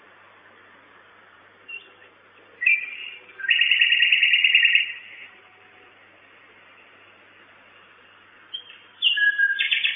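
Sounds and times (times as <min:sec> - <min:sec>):
common nightingale song at a nest box: 0:01.6 - 0:05.9, 0:07.7 - 0:09.9.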